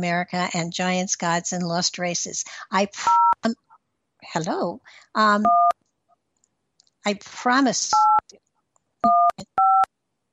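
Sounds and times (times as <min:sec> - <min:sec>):
speech: 0:00.0 - 0:03.6, 0:04.2 - 0:05.7, 0:07.0 - 0:08.4, 0:09.0 - 0:09.6
telephone touch-tone dialing beeps: 0:03.1 - 0:03.4, 0:05.4 - 0:05.8, 0:08.0 - 0:08.2, 0:09.0 - 0:09.9.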